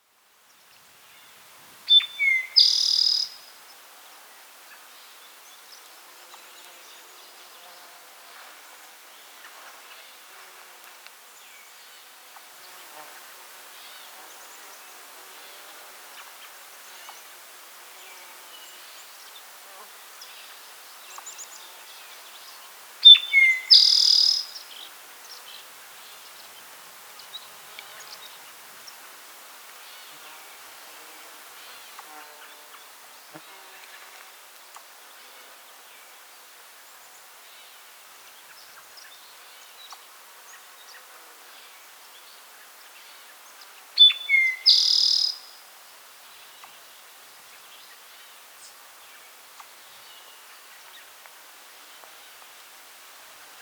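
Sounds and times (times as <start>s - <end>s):
Eastern Towhee Pipilo erythrophthalmus calling: 1.9s - 3.4s, 23.0s - 24.6s, 44.0s - 45.4s.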